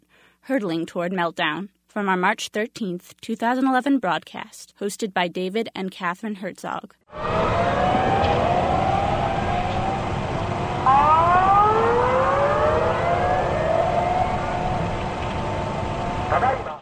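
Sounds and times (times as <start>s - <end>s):
speech: 0.4s - 8.7s
emergency warning siren wailing in Japan during a tsunami: 7.1s - 16.7s.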